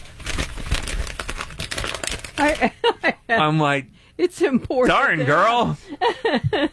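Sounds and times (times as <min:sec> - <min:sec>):
piece of paper crinkling and crumpling: 0:00.0 - 0:02.8
speech: 0:02.4 - 0:06.7.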